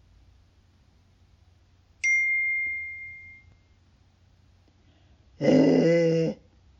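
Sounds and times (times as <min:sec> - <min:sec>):
bright ding: 0:02.0 - 0:03.8
dog growling: 0:05.4 - 0:06.4.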